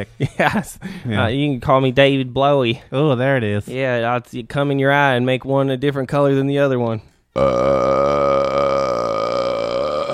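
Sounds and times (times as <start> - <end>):
speech: 0.0 - 8.4
long loud throaty burp: 7.4 - 10.1.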